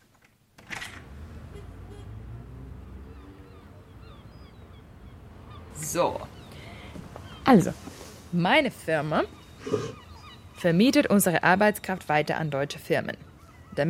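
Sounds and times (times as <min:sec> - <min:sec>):
seagulls calling outdoors: 0:02.9 - 0:13.8
speech: 0:05.9 - 0:06.3, 0:07.5 - 0:10.0, 0:10.6 - 0:13.2.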